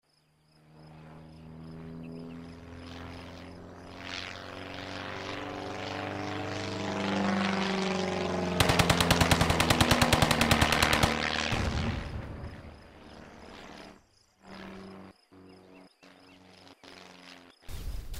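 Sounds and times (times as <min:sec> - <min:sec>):
aircraft being machine-gunned: 0:01.6 - 0:15.1.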